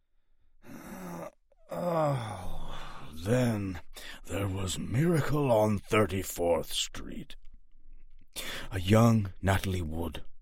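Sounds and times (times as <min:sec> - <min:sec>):
man groaning as he walks back to the couch: 0:00.7 - 0:03.2
speech: 0:04.7 - 0:07.4, 0:08.4 - 0:10.3.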